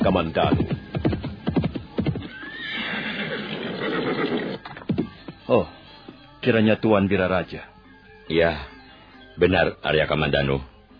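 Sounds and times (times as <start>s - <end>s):
speech: 0.0s - 0.9s, 5.5s - 5.8s, 6.4s - 7.7s, 8.3s - 8.7s, 9.4s - 10.7s
horse hooves clopping and shuffling on the ground: 0.0s - 6.3s
tethered horse whinnying: 2.2s - 4.7s.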